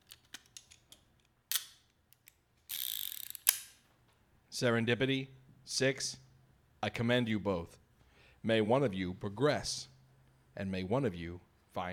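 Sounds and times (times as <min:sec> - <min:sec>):
revolver cylinder ratcheting clicks: 0:00.0 - 0:03.7
speech: 0:04.6 - 0:07.8, 0:08.4 - 0:09.9, 0:10.6 - 0:11.9.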